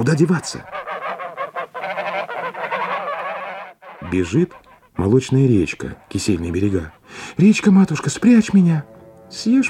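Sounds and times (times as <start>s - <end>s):
speech: 0.0s - 0.8s, 4.0s - 9.6s
flock of geese honking in flight: 0.2s - 4.9s.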